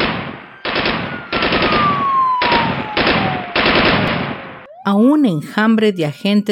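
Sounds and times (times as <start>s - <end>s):
machine gun fire from armored gunmen during a shootout with police: 0.0s - 4.6s
speech: 4.9s - 6.5s.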